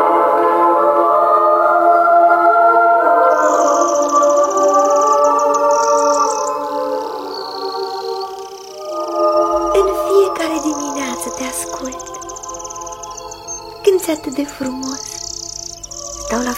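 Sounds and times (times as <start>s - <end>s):
steady background of sustained tonal sound: 0.0s - 16.5s
small bird singing and chirping in quick high trills: 3.3s - 16.5s
speech: 14.4s - 15.0s.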